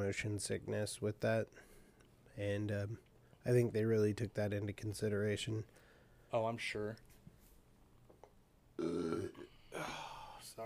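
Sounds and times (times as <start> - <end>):
speech: 0.0 - 1.8, 2.4 - 7.1
loud deep rumbling burp: 8.8 - 10.1.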